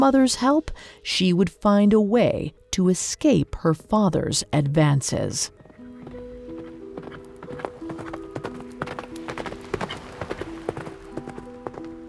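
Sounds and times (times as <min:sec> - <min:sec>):
speech: 0:00.0 - 0:05.6
horse hooves clip-clopping at a walk: 0:05.5 - 0:12.0.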